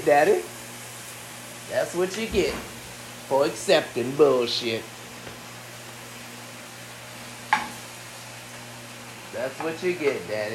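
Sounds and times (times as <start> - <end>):
speech: 0.0 - 0.5, 1.7 - 4.9, 9.4 - 10.5
washing machine with faulty spin cycle whirring and hissing: 0.0 - 10.5
washing machine clunk: 2.2 - 2.8.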